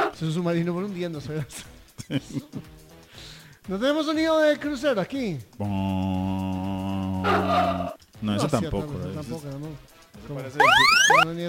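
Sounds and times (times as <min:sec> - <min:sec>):
speech: 0:00.2 - 0:06.3, 0:07.2 - 0:11.4
vocal sounds: 0:10.6 - 0:11.2
voice imitating an alarm with a rising wailing tone: 0:10.6 - 0:11.2.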